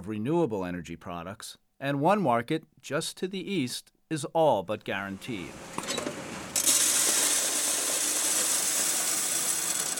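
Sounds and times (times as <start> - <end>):
speech: 0.0 - 5.8
coin mint machine mechanical rattle: 5.6 - 9.9
coin mint machine dropping new euro coins into a sorter: 5.9 - 9.9.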